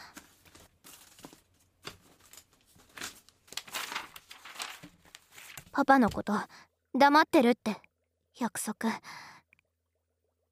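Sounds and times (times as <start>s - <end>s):
written-on sheet of paper rustling and crinkling as it is unfolded: 0.0s - 6.2s
speech: 5.8s - 7.8s, 8.4s - 9.3s.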